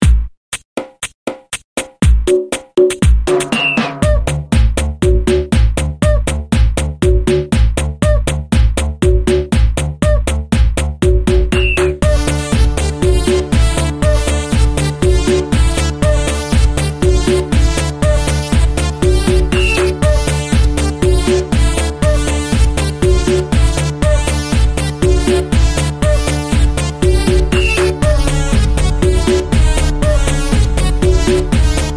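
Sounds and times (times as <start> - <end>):
instrumental background music: 0.0 - 31.9.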